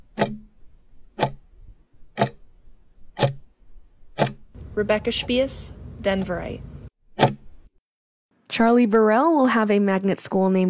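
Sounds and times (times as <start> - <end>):
clock ticking: 0.0 - 0.4, 1.2 - 1.4, 2.2 - 2.4, 3.2 - 3.4, 4.2 - 4.4
speech: 4.8 - 6.7, 8.6 - 10.6.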